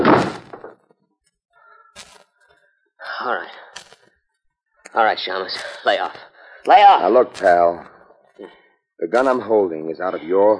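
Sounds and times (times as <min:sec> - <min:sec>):
heavy door kicked shut: 0:00.0 - 0:00.7
speech: 0:03.2 - 0:03.6, 0:04.9 - 0:10.5.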